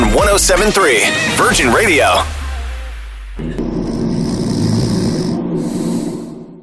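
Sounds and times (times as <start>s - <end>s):
speech: 0.4s - 2.4s
person snoring while dozing off: 3.4s - 6.6s.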